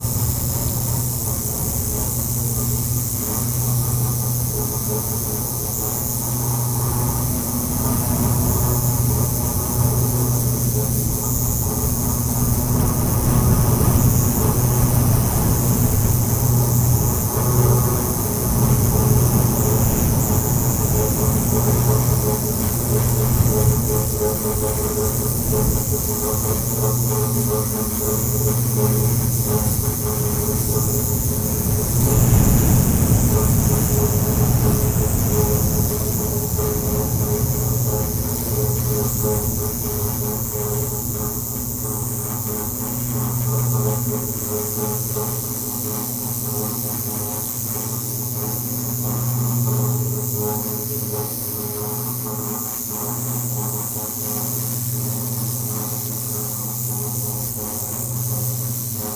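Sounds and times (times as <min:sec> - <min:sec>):
industrial electricity current going through a post pylon in the desert: 0:00.0 - 0:59.1.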